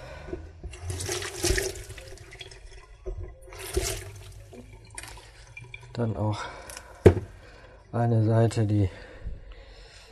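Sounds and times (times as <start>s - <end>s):
water running and splashing as small zucchini are washed: 0.8s - 6.0s
speech: 6.0s - 6.6s, 7.9s - 9.1s.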